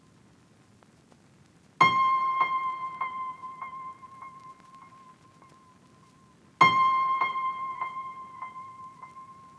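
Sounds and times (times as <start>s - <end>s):
West Coast piano melody loop in F minor at 100 BPM: 1.8s - 5.2s, 6.6s - 9.5s.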